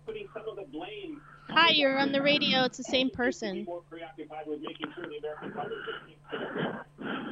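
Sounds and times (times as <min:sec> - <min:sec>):
faint steady hum: 0:00.0 - 0:07.3
speech: 0:01.6 - 0:07.2
heavy raspy breathing of a man over a phone line: 0:05.4 - 0:07.3.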